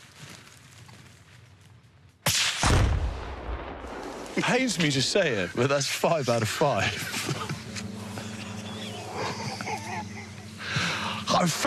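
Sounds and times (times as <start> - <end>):
gunshot fired at a muntjac-shaped practice target: 2.2 - 4.1
speech: 4.4 - 7.5, 11.4 - 11.6
laughter: 6.7 - 11.6.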